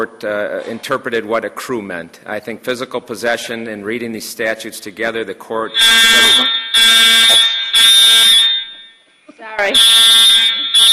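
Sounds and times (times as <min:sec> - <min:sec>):
speech: 0:00.0 - 0:07.5, 0:09.5 - 0:10.1
fire alarm being tested blaring: 0:05.7 - 0:10.9.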